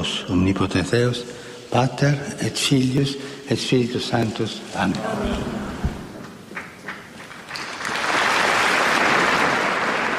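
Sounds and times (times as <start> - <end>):
speech: 0.3 - 5.9
large crowd applauding in a packed hall: 6.5 - 10.1.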